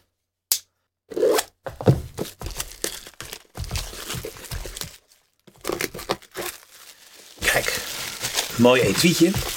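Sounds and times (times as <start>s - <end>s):
plastic packaging torn off and crinkled: 2.2s - 9.5s
speech: 8.6s - 9.5s.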